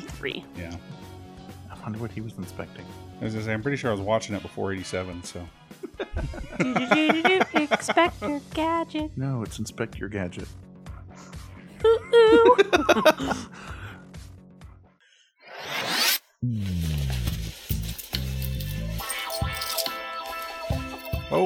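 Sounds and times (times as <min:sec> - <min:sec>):
speech: 0:00.2 - 0:01.1, 0:01.8 - 0:05.6, 0:06.2 - 0:10.6, 0:12.4 - 0:13.7
laughter: 0:05.7 - 0:08.3, 0:11.8 - 0:13.6
zipper being pulled down: 0:15.5 - 0:18.7.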